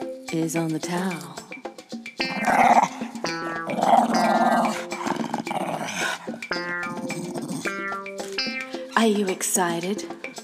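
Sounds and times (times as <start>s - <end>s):
speech: 0.3s - 1.4s, 9.0s - 10.2s
dog growling: 2.2s - 8.3s.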